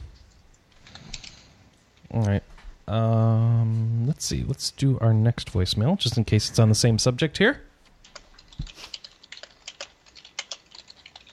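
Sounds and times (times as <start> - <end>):
typing on a computer keyboard: 0.8 - 1.4, 8.0 - 11.3
speech: 2.1 - 3.1, 4.2 - 7.7.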